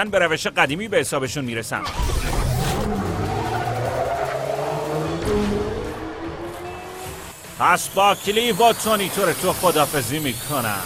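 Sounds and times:
speech: 0:00.0 - 0:03.0, 0:07.6 - 0:10.8
racing car engines roaring: 0:01.7 - 0:09.8
tires squealing and skidding: 0:01.8 - 0:10.8.

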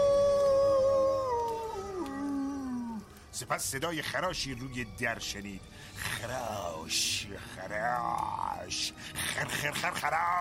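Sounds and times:
wolf howling: 0:00.0 - 0:03.2
speech: 0:03.4 - 0:10.4.

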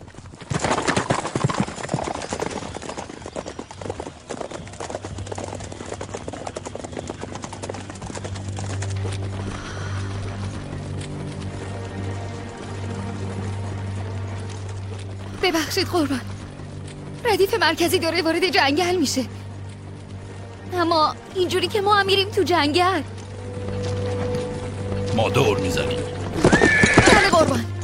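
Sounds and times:
horse hooves clip-clopping pulling a horse-drawn carriage: 0:00.0 - 0:27.8
speech: 0:15.5 - 0:16.3, 0:17.3 - 0:19.4, 0:20.8 - 0:23.2, 0:25.2 - 0:26.1.

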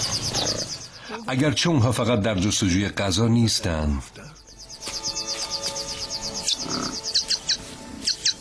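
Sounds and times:
Jackson's widowbirds chirping rapidly: 0:00.0 - 0:01.1, 0:04.3 - 0:08.3
speech: 0:00.4 - 0:04.4.

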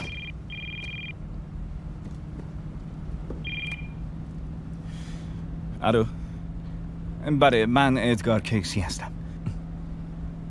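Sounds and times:
telephone ringing with short high electronic ring bursts: 0:00.0 - 0:01.2, 0:03.4 - 0:04.0
speech: 0:05.8 - 0:06.2, 0:07.2 - 0:09.2.

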